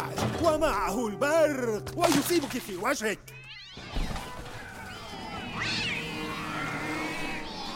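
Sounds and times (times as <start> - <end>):
speech: 0.4 - 3.4
cats meowing and caterwauling: 3.3 - 7.7.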